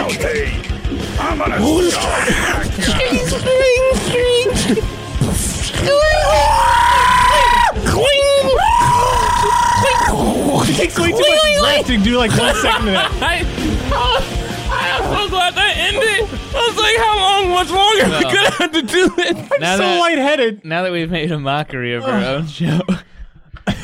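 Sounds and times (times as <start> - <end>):
cluttered noisy background: 0.0 - 19.4
speech: 0.1 - 6.8, 10.8 - 14.3, 15.4 - 23.1
laughter: 1.9 - 5.0, 10.6 - 16.6, 17.4 - 20.0, 22.4 - 23.8
voice imitating a man screaming: 5.8 - 11.9, 13.8 - 16.8.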